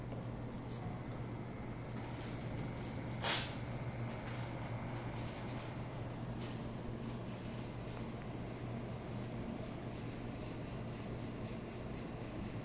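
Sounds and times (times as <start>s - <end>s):
laboratory centrifuge running E.coli at full speed: 0.2s - 12.5s.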